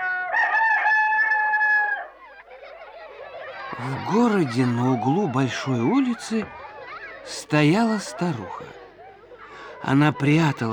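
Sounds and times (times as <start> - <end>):
rooster crowing: 0.0 - 2.2
laughter: 2.2 - 10.7
speech: 3.8 - 6.6, 7.3 - 8.8, 9.8 - 10.7.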